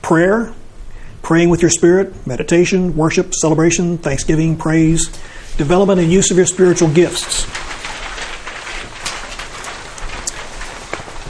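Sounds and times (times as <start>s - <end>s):
speech: 0.1s - 0.6s, 1.2s - 7.7s
steady dense patter of rain: 4.1s - 11.2s.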